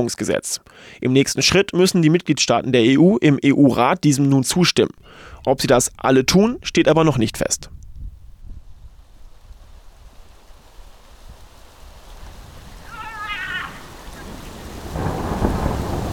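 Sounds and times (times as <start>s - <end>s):
speech: 0.0s - 7.8s
steady rain: 7.8s - 16.1s
cat meowing: 12.8s - 14.0s.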